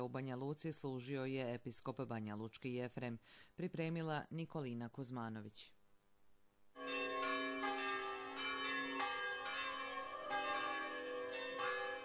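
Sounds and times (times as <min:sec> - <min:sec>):
speech: 0:00.0 - 0:05.8
church bells ringing at midnight: 0:06.8 - 0:12.0.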